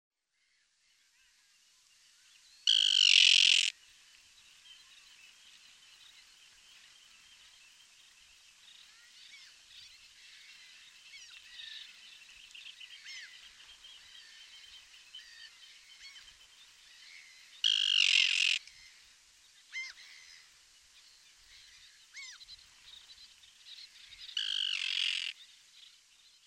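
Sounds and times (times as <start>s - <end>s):
common tern calling: 2.7s - 3.7s, 17.6s - 18.7s, 24.4s - 25.4s.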